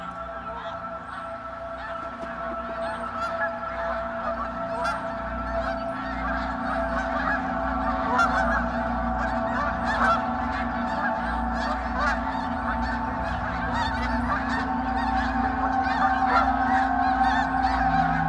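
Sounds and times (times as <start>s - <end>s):
dense flock of snow geese honking while taking off: 0.0s - 18.2s
steady low rumble: 7.8s - 18.2s.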